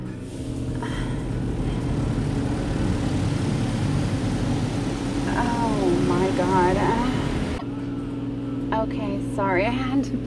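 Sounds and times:
automatic car wash running with a mechanical roar: 0:00.0 - 0:08.6
speech: 0:08.9 - 0:10.2.

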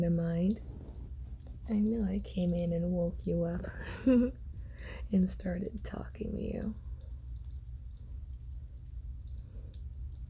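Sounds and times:
speech: 0:00.0 - 0:00.7, 0:01.7 - 0:06.8
faint scattered drips pattering: 0:00.0 - 0:10.2
steady quiet rainfall: 0:00.0 - 0:10.2.

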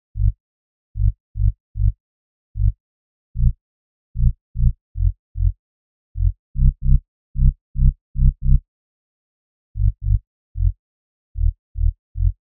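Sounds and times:
sub-bass: 0:00.1 - 0:00.4, 0:01.0 - 0:02.0, 0:02.6 - 0:02.8, 0:03.4 - 0:03.6, 0:04.2 - 0:05.6, 0:06.2 - 0:08.6, 0:09.8 - 0:10.8, 0:11.4 - 0:12.4.

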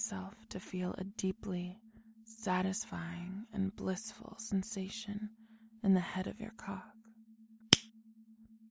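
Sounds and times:
speech: 0:00.0 - 0:07.0
faint steady low hum: 0:00.0 - 0:08.6
finger snap: 0:07.7 - 0:07.9.

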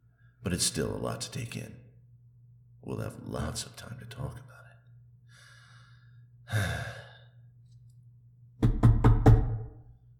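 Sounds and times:
speech: 0:00.4 - 0:01.8, 0:02.8 - 0:04.5, 0:06.5 - 0:06.9
breathy sigh: 0:05.3 - 0:07.4
quick sharp knocks on a door: 0:08.6 - 0:09.8.

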